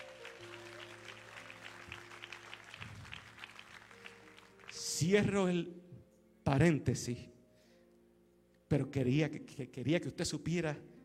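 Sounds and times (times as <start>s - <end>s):
audience applause: 0.0s - 4.8s
speech: 5.0s - 5.8s, 6.5s - 7.3s, 8.7s - 10.9s.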